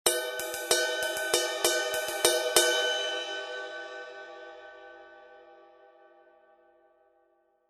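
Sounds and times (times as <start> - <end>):
18in crash ride cymbal: 0.1 - 4.9.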